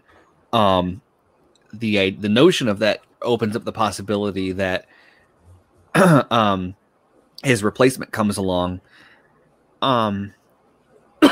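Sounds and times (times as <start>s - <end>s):
speech: 0.5s - 1.1s, 1.7s - 5.0s, 6.0s - 6.8s, 7.4s - 9.1s, 9.8s - 10.4s
person coughing from a piece of almond in the throat: 6.0s - 6.4s.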